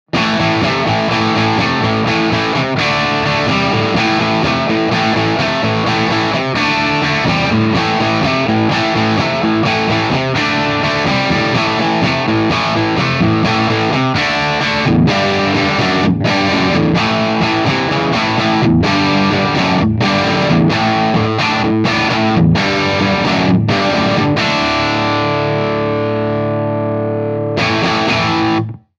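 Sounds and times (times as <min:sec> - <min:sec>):
classic rock music: 0:00.1 - 0:28.9.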